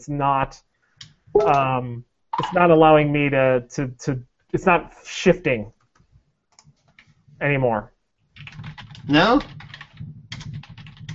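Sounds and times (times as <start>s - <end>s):
speech: 0.0s - 0.7s, 1.3s - 5.8s, 7.4s - 9.6s
computer keyboard typing: 1.4s - 1.7s, 8.4s - 11.1s.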